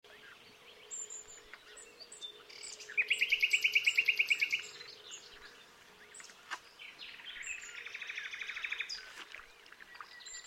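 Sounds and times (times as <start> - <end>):
common nightingale song: 0.0 - 10.4.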